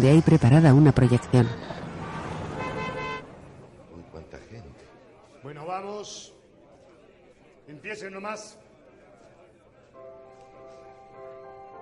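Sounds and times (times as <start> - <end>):
speech: 0.0 - 1.8, 6.0 - 6.4, 7.7 - 8.6
dense rumble of cars and motorbikes on the road: 0.0 - 5.4
sustained horn blaring: 1.1 - 3.6.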